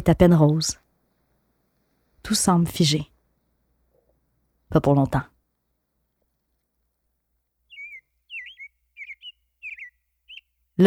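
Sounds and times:
speech: 0.0s - 0.8s, 2.2s - 3.1s, 4.7s - 5.3s
blackbird singing at dawn: 7.7s - 10.8s.

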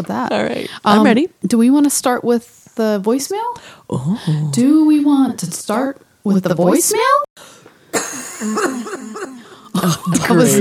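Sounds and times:
speech: 0.0s - 7.6s, 8.4s - 10.6s
person coughing harshly: 8.0s - 10.4s.

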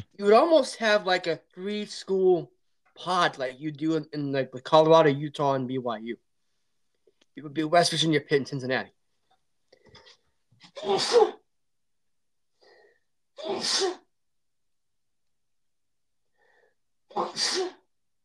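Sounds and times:
speech: 0.2s - 6.2s, 7.4s - 9.0s, 10.7s - 11.4s, 13.4s - 14.0s, 17.2s - 17.8s
person sneezing: 10.7s - 11.4s, 13.4s - 14.1s, 17.1s - 17.9s.

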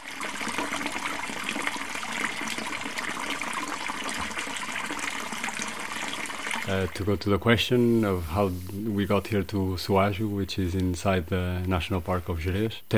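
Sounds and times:
steady rushing water: 0.0s - 9.1s
speech: 6.7s - 12.9s.

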